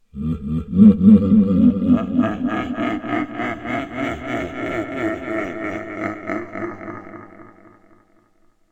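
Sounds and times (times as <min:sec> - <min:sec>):
devil laughing: 0:00.1 - 0:08.3.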